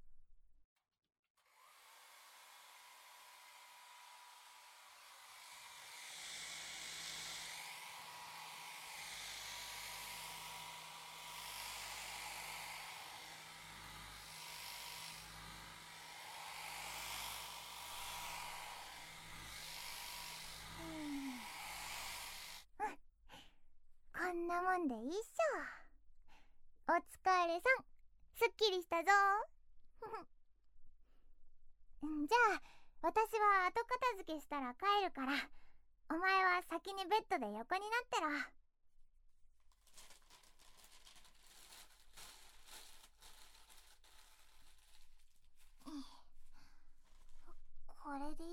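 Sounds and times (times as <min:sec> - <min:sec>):
hair dryer blowing loose cut hair off after a haircut: 0:01.4 - 0:22.7
speech: 0:24.6 - 0:25.6, 0:27.0 - 0:27.8, 0:28.4 - 0:29.5, 0:32.0 - 0:38.6, 0:48.0 - 0:48.5.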